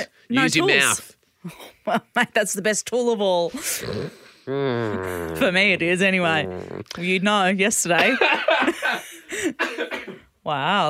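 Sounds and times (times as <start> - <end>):
speech: 0.0 - 10.8
person coughing and spluttering: 9.6 - 10.3.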